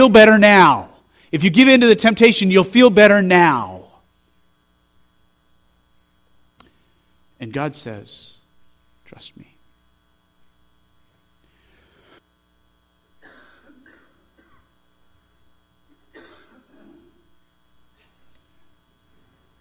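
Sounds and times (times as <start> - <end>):
speech: 0.0 - 3.8, 7.4 - 8.3, 9.1 - 9.5
steady low electrical hum: 0.0 - 19.5
harsh COVID coughs into the microphone: 13.2 - 14.8, 15.9 - 17.2.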